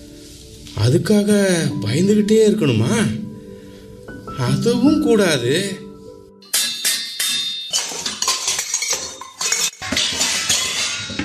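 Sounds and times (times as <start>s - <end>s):
speech: 0.8s - 3.2s, 4.4s - 5.8s
metal pots and vessels rolling and clattering in a kitchen: 6.6s - 11.2s.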